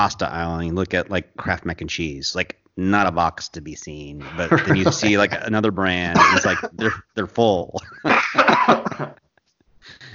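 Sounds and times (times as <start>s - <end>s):
speech: 0.0s - 9.2s
laughter: 4.2s - 5.5s, 6.2s - 7.0s, 7.8s - 9.2s
throat-clearing: 6.1s - 7.1s, 8.1s - 9.2s
harsh coughs: 6.2s - 7.0s, 8.1s - 9.2s.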